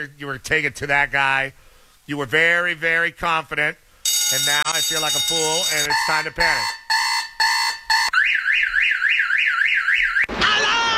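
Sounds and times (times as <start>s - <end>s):
speech: 0.0s - 6.8s
harsh electronic alarm beeps: 4.1s - 8.4s
electronic alarm warbling siren rising and falling: 4.1s - 10.3s.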